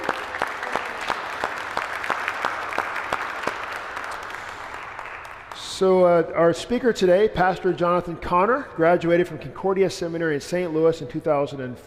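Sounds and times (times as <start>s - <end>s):
audience applause: 0.0s - 5.6s
speech: 5.8s - 11.8s.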